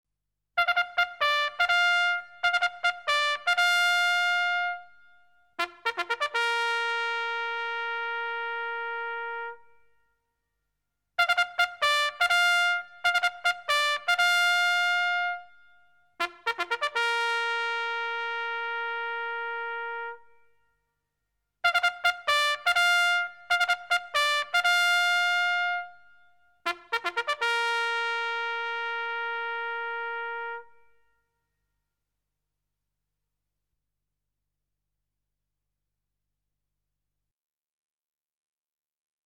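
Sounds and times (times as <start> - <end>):
military trumpet: 0.6 - 10.0, 11.2 - 20.7, 21.6 - 31.4.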